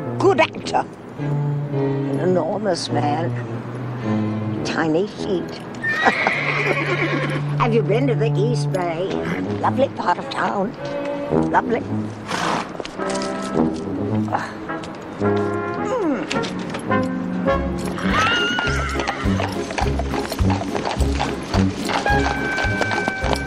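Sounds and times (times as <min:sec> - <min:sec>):
speech: 0:00.3 - 0:12.4, 0:13.6 - 0:14.6, 0:15.2 - 0:15.5
horse hooves clip-clopping: 0:05.4 - 0:23.4
horse neighing and whinnying: 0:05.8 - 0:07.6, 0:17.9 - 0:23.4.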